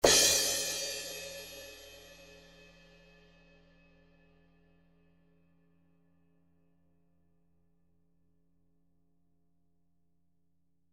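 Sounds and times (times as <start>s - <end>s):
Zildjian cymbal: 0.0s - 4.7s.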